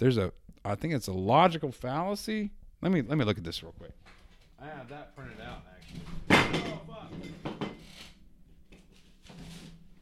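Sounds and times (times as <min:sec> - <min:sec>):
speech: 0:00.0 - 0:07.4
candle scraping and clattering as it settles: 0:05.5 - 0:10.0.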